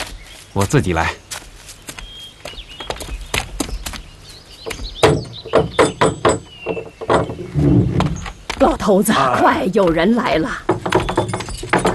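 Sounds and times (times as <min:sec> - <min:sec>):
speech: 0:00.6 - 0:01.2, 0:08.6 - 0:10.7
knocking on a door: 0:04.7 - 0:08.2, 0:10.6 - 0:11.9.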